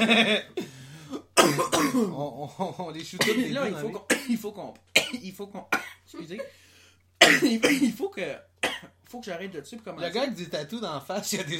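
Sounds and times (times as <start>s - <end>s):
speech: 0.0s - 0.8s, 1.4s - 6.6s, 7.2s - 11.5s
person coughing harshly after smoking a joint: 0.0s - 2.2s, 3.2s - 6.4s, 7.2s - 8.0s, 8.6s - 9.0s
person gasping: 0.6s - 1.4s.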